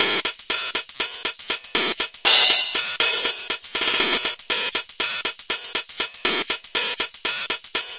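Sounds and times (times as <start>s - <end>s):
stretched crashy hi-hats: 0.0s - 7.9s.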